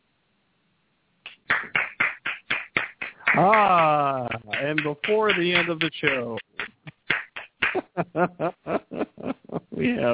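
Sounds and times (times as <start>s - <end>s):
rhythmic hand clapping: 1.2s - 8.0s
laughter: 3.3s - 7.0s, 7.7s - 10.1s
speech: 3.4s - 6.5s, 8.0s - 10.1s.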